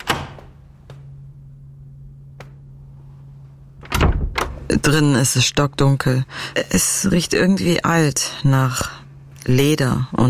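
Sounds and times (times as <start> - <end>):
latch clicks and knocks of a door off a hallway being opened: 0.0 - 0.4, 3.8 - 4.6
loud clunk of a door: 0.0 - 0.6, 3.8 - 4.7
low steady hum: 0.0 - 10.2
speech: 4.8 - 10.2.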